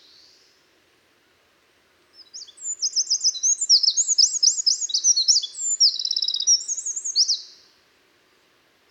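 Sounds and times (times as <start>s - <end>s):
Eurasian wren Troglodytes troglodytes singing: 2.2s - 7.5s.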